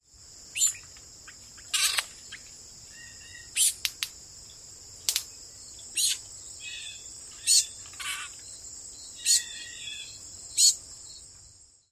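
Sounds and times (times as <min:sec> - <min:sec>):
Red-eyed Vireo various calls: 0:00.5 - 0:11.1
Red-eyed Vireo bill snaps: 0:03.7 - 0:04.2, 0:05.0 - 0:05.3.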